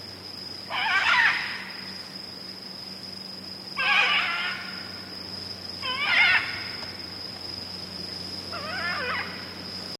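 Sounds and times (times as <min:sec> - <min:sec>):
Red-and-green Macaw calls given in flight: 0:00.7 - 0:01.7, 0:03.8 - 0:04.8, 0:05.8 - 0:06.8, 0:08.5 - 0:09.4.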